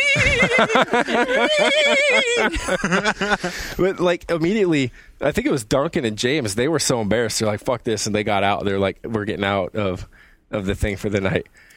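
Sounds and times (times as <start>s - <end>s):
person's voice imitating a horse whinny: 0.0s - 0.7s
laughter: 0.0s - 3.8s
speech: 0.4s - 11.7s.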